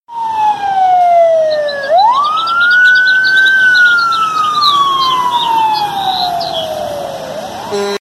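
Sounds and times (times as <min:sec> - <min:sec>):
sirens: 0:00.1 - 0:07.9
birds: 0:01.4 - 0:06.9.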